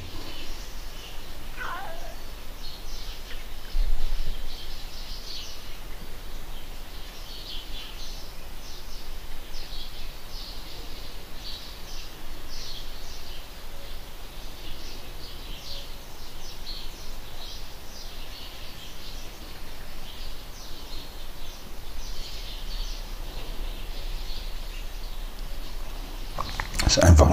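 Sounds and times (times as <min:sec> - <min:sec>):
birds chirping outdoors: 0:00.0 - 0:27.3
constant airy hiss: 0:00.0 - 0:27.3
speech: 0:26.9 - 0:27.3.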